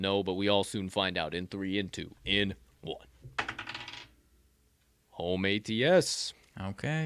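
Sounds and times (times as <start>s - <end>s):
speech: 0.0s - 3.4s, 5.2s - 7.0s
die rolling across a hard surface: 3.3s - 4.2s.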